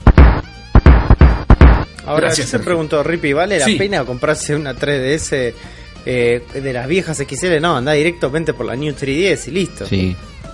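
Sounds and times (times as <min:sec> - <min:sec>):
booming cannon-like blasts: 0:00.0 - 0:01.9
speech: 0:02.1 - 0:10.3.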